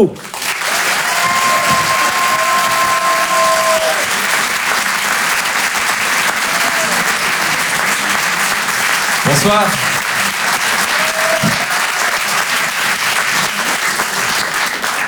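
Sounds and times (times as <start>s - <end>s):
speech: 0.0s - 0.4s, 9.3s - 9.9s
audience applauding at a live comedy show: 0.0s - 15.0s
whistle: 1.2s - 3.9s.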